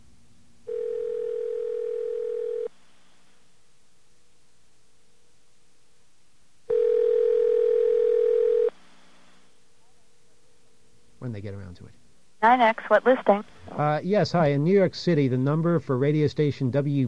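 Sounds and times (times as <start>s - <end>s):
telephone dial tone: 0.7s - 2.7s, 6.7s - 8.7s
speech: 11.4s - 17.0s.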